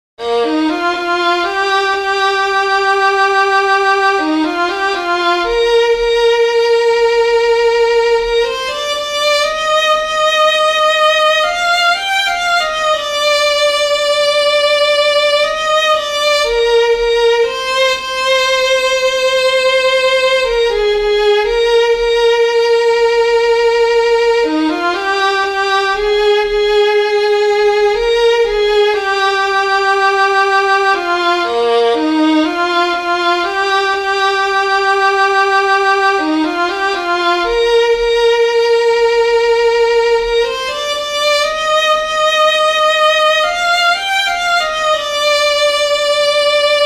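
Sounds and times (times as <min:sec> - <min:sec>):
solo violin playing: 0:00.2 - 0:46.8.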